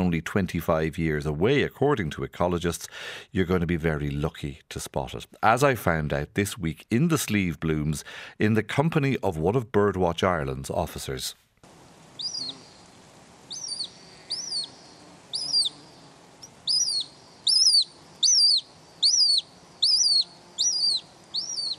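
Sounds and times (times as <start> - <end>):
speech: 0.1 - 11.4
Hen Harrier calls in the Slieve Blooms, Ireland: 12.2 - 12.7, 13.5 - 21.7.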